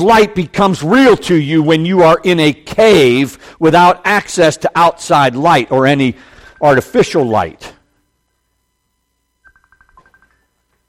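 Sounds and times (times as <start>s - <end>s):
speech: 0.0s - 7.8s
phone ringing with electronic trill: 9.3s - 10.8s.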